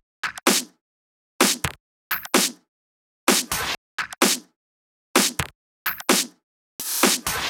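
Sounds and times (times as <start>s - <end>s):
drum loop: 0.2s - 0.7s, 1.4s - 2.6s, 3.3s - 4.5s, 5.2s - 7.4s.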